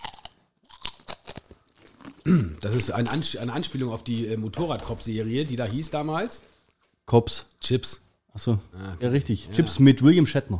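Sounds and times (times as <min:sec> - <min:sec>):
person chewing crunchy food: 0:00.0 - 0:03.4
speech: 0:02.2 - 0:06.5, 0:07.1 - 0:10.5.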